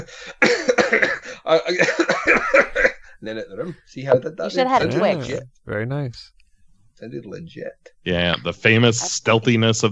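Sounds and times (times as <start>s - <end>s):
speech: 0.0s - 2.7s, 3.3s - 6.4s, 7.0s - 9.8s
harsh raspy coughing: 0.0s - 3.7s.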